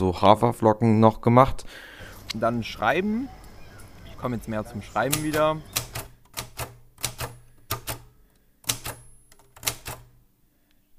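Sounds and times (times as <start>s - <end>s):
speech: 0.0s - 3.4s, 4.2s - 5.8s
typewriter keystrokes: 5.0s - 10.2s.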